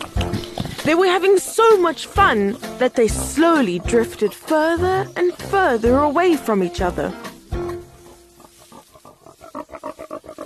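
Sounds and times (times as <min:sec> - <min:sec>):
pigs snuffling and grunting while grazing: 0:00.0 - 0:10.4
speech: 0:00.8 - 0:07.2
pigs snuffling through bushes and rummaging through leaves: 0:04.6 - 0:10.4.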